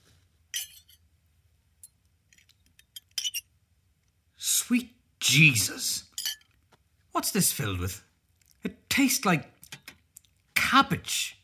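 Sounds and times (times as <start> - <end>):
glasses clinking in a toast: 0.5 - 1.0, 6.2 - 6.6
speech: 4.7 - 6.1, 7.2 - 9.6, 10.7 - 11.4.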